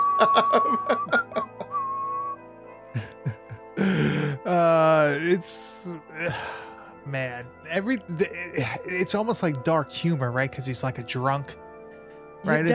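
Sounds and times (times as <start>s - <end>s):
laughter: 0.0s - 1.8s, 3.0s - 3.6s
person whistling a cheerful tune: 0.0s - 2.4s
speech: 0.2s - 1.2s, 5.2s - 11.6s, 12.4s - 12.7s
groaning drawn-out vocal sounds: 3.8s - 5.1s, 6.1s - 6.6s.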